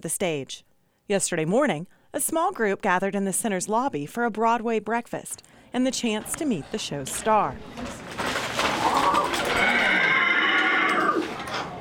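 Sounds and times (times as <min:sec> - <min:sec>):
speech: 0:00.0 - 0:08.0
life-sized lifelike horse puppet whinnying and neighing: 0:08.7 - 0:11.4.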